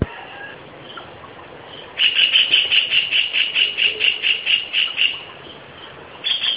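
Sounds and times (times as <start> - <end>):
white-throated kingfisher calling with a long shrill rattle: 2.0 - 5.3, 6.2 - 6.5.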